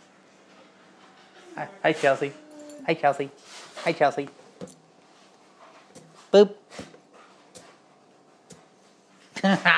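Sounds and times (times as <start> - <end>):
dog whimpering, wanting to play with a balloon: 1.4 - 3.0
speech: 1.6 - 4.7, 6.3 - 6.8.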